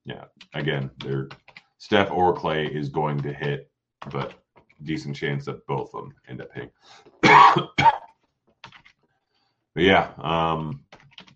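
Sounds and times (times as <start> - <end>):
speech: 0.1 - 8.0, 9.8 - 10.9
harsh drawn-out throat clearing: 7.2 - 8.1
person coughing: 7.2 - 8.1.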